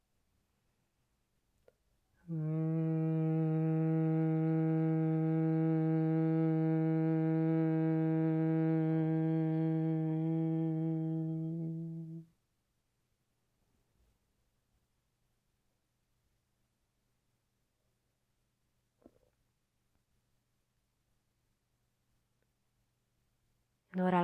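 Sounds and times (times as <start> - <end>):
bee breath hum during Brahmari pranayama practice: 2.2 - 12.3
speech: 2.3 - 2.6.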